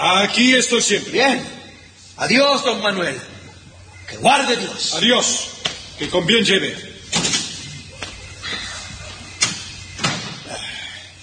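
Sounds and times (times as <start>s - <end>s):
speech: 0.0s - 1.6s, 2.2s - 3.4s, 4.1s - 6.9s
door pushed shut: 7.1s - 7.8s, 9.4s - 10.5s.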